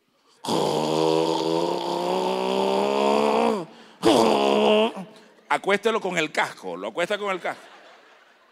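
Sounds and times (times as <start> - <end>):
voice imitating loud snoring: 0.4 - 4.9
speech: 5.6 - 7.7
laughter: 7.2 - 8.5.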